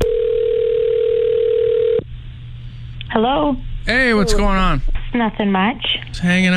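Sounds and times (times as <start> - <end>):
electronic telephone ringing tone of a call being placed: 0.0 - 2.0
speech: 3.9 - 6.5.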